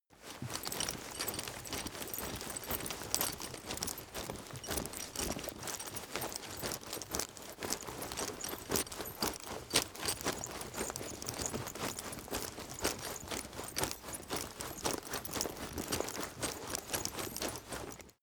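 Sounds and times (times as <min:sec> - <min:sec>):
fast footsteps with leather and metal: 0:00.2 - 0:18.2.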